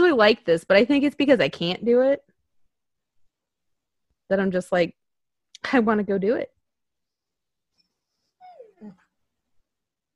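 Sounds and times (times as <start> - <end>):
speech: 0.1 - 2.3, 4.3 - 5.0, 5.6 - 6.6
dog whimpering in high wavering whines: 8.0 - 9.2.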